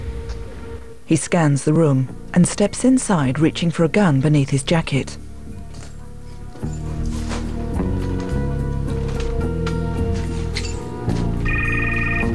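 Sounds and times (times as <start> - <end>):
dense brooding musical score: 0.0 - 12.3
speech: 1.1 - 5.2
mobile phone ringing in a drawer of an overturned table: 11.3 - 12.3.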